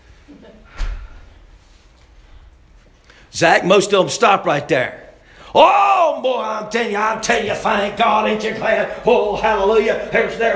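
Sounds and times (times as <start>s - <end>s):
speech: 0.3s - 0.9s, 3.3s - 10.5s
door shut with a firm heavy thud: 0.7s - 1.2s.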